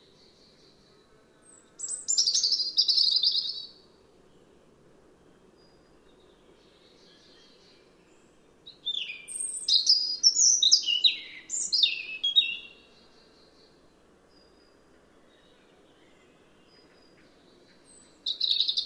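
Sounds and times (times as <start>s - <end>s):
European robin (Erithacus rubecula) singing: 0.0s - 4.7s, 5.4s - 18.8s.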